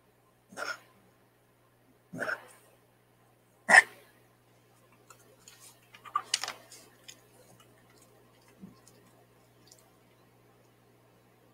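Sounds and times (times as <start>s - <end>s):
puppy coughing: 0.5s - 0.9s, 2.1s - 2.6s, 3.7s - 4.0s.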